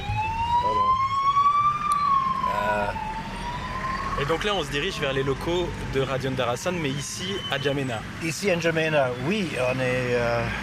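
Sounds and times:
ambulance siren wailing on a road in N'Djamena: 0:00.0 - 0:08.0
road rumble: 0:00.0 - 0:10.6
speech: 0:04.2 - 0:10.6.

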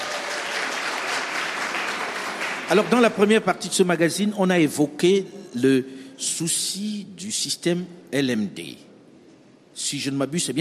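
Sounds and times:
studio audience applauding: 0:00.0 - 0:03.4
speech: 0:02.7 - 0:08.9, 0:09.8 - 0:10.6.

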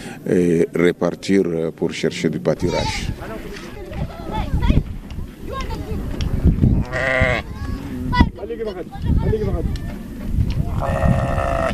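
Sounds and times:
speech: 0:00.2 - 0:03.5, 0:06.9 - 0:07.4, 0:08.5 - 0:10.1, 0:10.7 - 0:11.7
livestock bleating at a pastoral watering station in Chad: 0:02.6 - 0:03.1, 0:06.8 - 0:07.5, 0:10.8 - 0:11.7
bustle of livestock gathering to drink at a watering station: 0:02.6 - 0:04.7, 0:06.6 - 0:08.3, 0:09.9 - 0:11.7.

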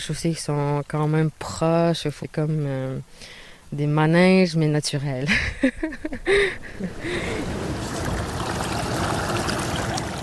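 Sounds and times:
speech: 0:00.0 - 0:08.1
laughter: 0:05.3 - 0:07.5
river rapids flowing over rocks: 0:06.8 - 0:10.2.

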